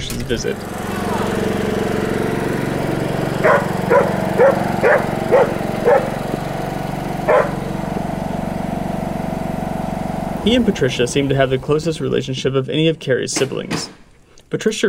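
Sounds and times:
lawnmower engine running: 0:00.0 - 0:14.7
speech: 0:00.2 - 0:01.0, 0:10.5 - 0:14.8
dog barking: 0:03.4 - 0:06.2, 0:07.3 - 0:07.6.

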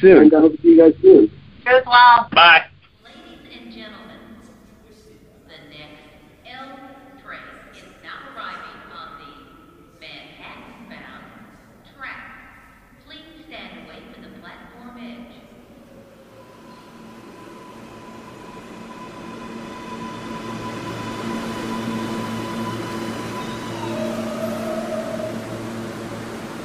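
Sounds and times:
speech: 0:00.0 - 0:02.7
subway train arriving at station platform: 0:03.0 - 0:26.6.

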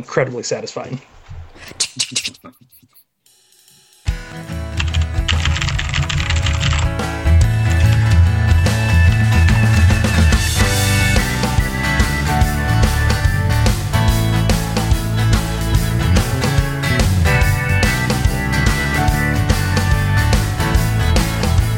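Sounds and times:
speech: 0:00.0 - 0:02.2
loud music: 0:04.1 - 0:21.7
clacky mechanical keyboard typing: 0:04.8 - 0:07.0.

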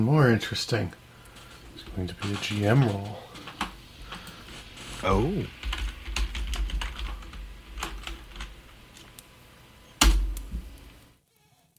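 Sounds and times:
speech: 0:00.0 - 0:01.0, 0:01.9 - 0:03.2, 0:05.0 - 0:05.6
person typing a letter on a computer keyboard: 0:05.6 - 0:08.5.

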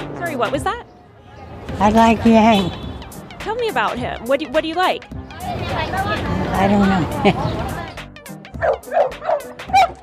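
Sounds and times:
speech: 0:00.3 - 0:00.9, 0:01.7 - 0:02.8, 0:03.4 - 0:07.8, 0:08.6 - 0:10.0
low murmuring voice-like sound: 0:05.2 - 0:08.1
street dog barking: 0:08.6 - 0:10.0.

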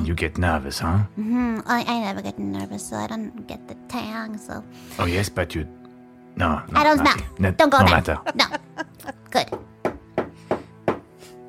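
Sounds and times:
speech: 0:00.1 - 0:05.8, 0:06.4 - 0:09.7
knocking on a door: 0:09.3 - 0:11.1.

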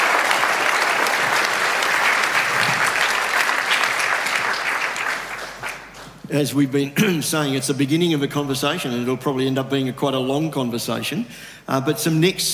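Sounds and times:
audience applause for a discussion panel: 0:00.0 - 0:06.2
speech: 0:06.3 - 0:12.5.

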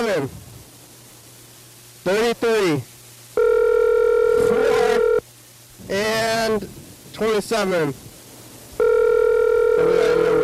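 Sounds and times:
speech: 0:00.0 - 0:00.5, 0:02.0 - 0:02.9, 0:06.6 - 0:08.1
faint constant hum: 0:00.0 - 0:10.4
electronic telephone ringing: 0:03.4 - 0:05.2, 0:08.8 - 0:10.4.

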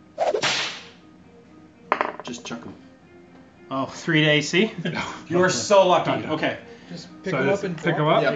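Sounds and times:
whip whooshing through the air and cracking: 0:00.2 - 0:01.0
speech: 0:02.3 - 0:02.9, 0:03.7 - 0:08.3.

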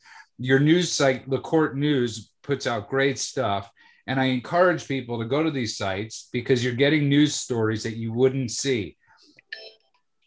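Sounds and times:
speech: 0:00.4 - 0:09.0
mobile phone ringing with a short electronic melody: 0:09.4 - 0:10.1.

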